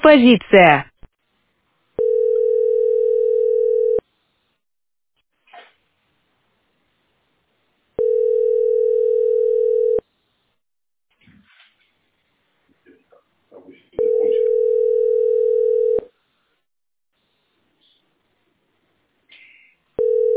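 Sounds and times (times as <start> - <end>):
speech: 0.0 - 0.9
telephone ringback tones of a call to a city landline number: 2.0 - 4.0, 8.0 - 10.0, 14.0 - 16.1, 20.0 - 20.3.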